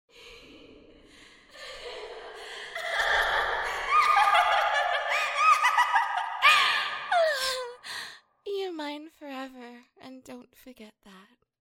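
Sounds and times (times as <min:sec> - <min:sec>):
yandere laugh: 0:02.8 - 0:07.8.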